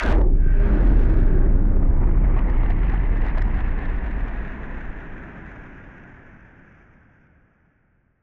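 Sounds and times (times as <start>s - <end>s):
noise bomb rumbling: 0.0s - 6.4s.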